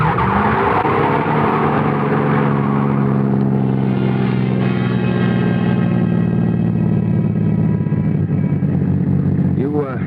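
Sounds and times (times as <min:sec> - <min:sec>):
car tires skidding and squealing: 0:00.0 - 0:06.6
car engine roaring while driven fast: 0:00.0 - 0:10.0.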